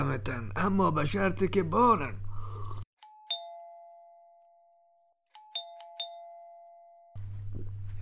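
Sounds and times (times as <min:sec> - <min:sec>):
speech: 0:00.1 - 0:02.2
doorbell at a house door chiming: 0:03.0 - 0:07.2.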